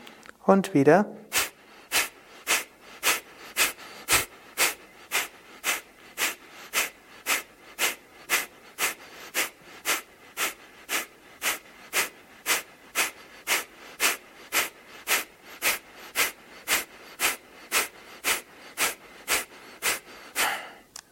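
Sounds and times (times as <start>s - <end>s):
speech: 0.5s - 1.2s
rapid forceful breathing in and out: 1.3s - 20.9s.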